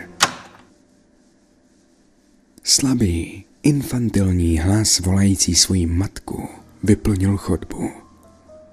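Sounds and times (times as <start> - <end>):
bathroom door pushed shut and locked: 0.0 - 0.7
speech: 2.7 - 8.0.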